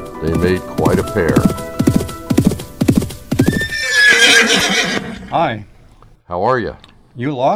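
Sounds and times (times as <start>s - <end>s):
tall thin horse's hooves clip-clopping: 0.0s - 6.2s
speech: 0.2s - 1.7s, 5.3s - 5.7s, 6.3s - 7.5s
tall thin horse whinnying: 1.1s - 6.0s.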